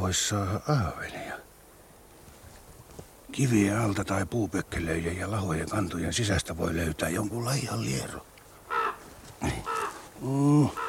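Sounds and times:
speech: 0:00.1 - 0:01.4, 0:03.4 - 0:08.3, 0:09.4 - 0:10.8
black crow cawing: 0:08.6 - 0:10.8.

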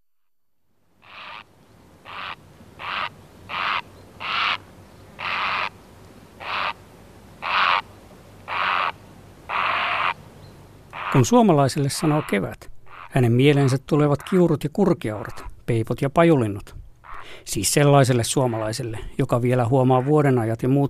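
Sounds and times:
Grey Heron croaking: 0:01.0 - 0:05.8, 0:06.4 - 0:06.8, 0:07.4 - 0:07.9, 0:08.5 - 0:10.2, 0:10.8 - 0:15.6, 0:16.4 - 0:20.8
speech: 0:11.1 - 0:20.8.

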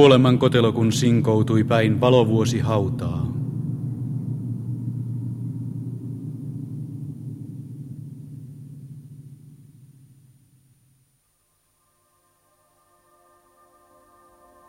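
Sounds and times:
speech: 0:00.0 - 0:03.4
deep steady generator rumble: 0:00.0 - 0:11.0.

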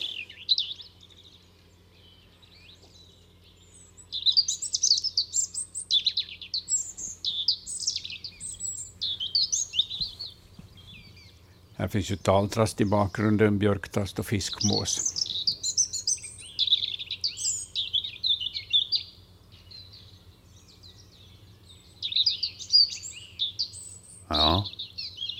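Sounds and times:
European robin singing: 0:00.0 - 0:25.3
faint low hum: 0:00.0 - 0:25.3
speech: 0:11.8 - 0:15.1.

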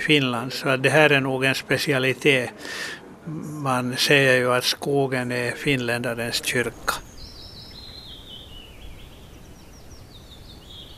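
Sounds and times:
speech: 0:00.0 - 0:07.0
steady hiss: 0:00.0 - 0:10.9
bird singing a continuous high warbling song: 0:05.6 - 0:10.9.

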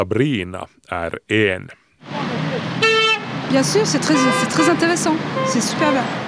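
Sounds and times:
speech: 0:00.0 - 0:02.2, 0:03.5 - 0:06.2
traffic rumble: 0:00.0 - 0:06.2
car horns honking at a roadblock south of Paris: 0:02.1 - 0:06.2.

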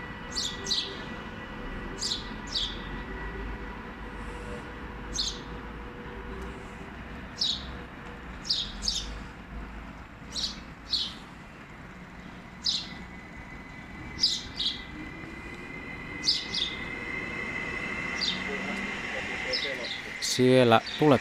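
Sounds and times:
low rumble of traffic or a passing train: 0:00.0 - 0:21.1
house sparrow chirping: 0:00.3 - 0:01.0, 0:02.0 - 0:02.9, 0:05.1 - 0:05.5, 0:07.4 - 0:07.7, 0:08.4 - 0:09.2, 0:10.3 - 0:11.2, 0:12.2 - 0:13.1, 0:14.0 - 0:15.2, 0:15.9 - 0:21.1
speech: 0:20.4 - 0:21.1.

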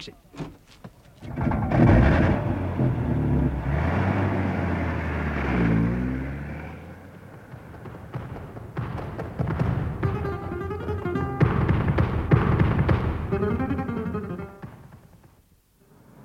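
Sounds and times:
speech: 0:00.0 - 0:00.5
car engine revving and driving away: 0:01.1 - 0:16.2.

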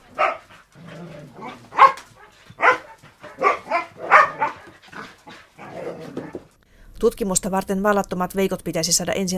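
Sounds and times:
dogs barking: 0:00.0 - 0:06.5
speech: 0:07.0 - 0:09.3.

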